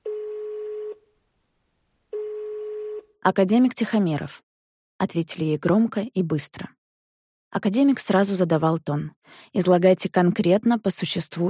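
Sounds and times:
telephone line tones from a public payphone: 0.0 - 1.0, 2.1 - 3.1
speech: 3.2 - 6.8, 7.5 - 11.4.

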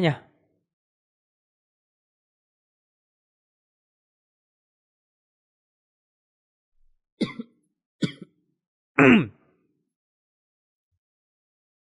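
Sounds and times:
person coughing: 7.2 - 8.3, 9.0 - 9.3.

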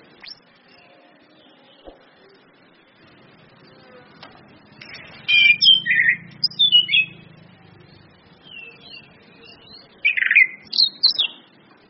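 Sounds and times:
Orange-headed thrush singing whistled slurs and warbled notes: 0.2 - 1.9, 4.7 - 7.3, 8.4 - 11.5.

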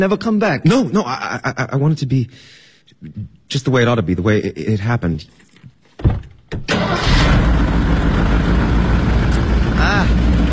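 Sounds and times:
speech: 0.0 - 7.5
new car engine with a sprung crankshaft cranking and running: 6.6 - 10.5.

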